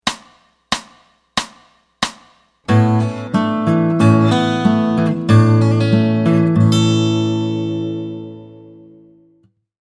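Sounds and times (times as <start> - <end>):
open A chord played with fingers: 2.7 - 9.4.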